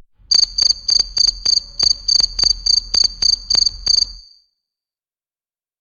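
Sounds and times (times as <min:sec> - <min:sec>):
cricket chirping: 0:00.2 - 0:04.5.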